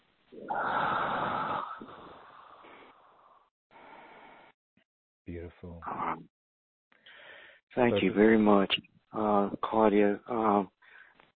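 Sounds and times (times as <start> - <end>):
deep breathing exercise: 0.4 - 4.6, 7.0 - 7.6, 10.8 - 11.3
speech: 5.3 - 6.4, 7.7 - 10.8.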